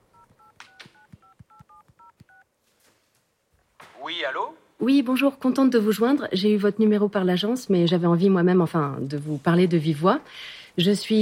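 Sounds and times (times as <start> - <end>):
touch-tone beeps of a telephone number being keyed in: 0.1 - 2.4
speech: 4.1 - 11.2.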